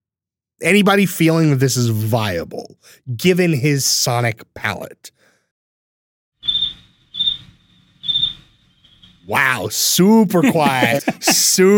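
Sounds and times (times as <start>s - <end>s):
speech: 0.6s - 5.3s, 9.3s - 11.7s
crickets chirping: 6.4s - 9.3s
laughter: 10.1s - 11.7s.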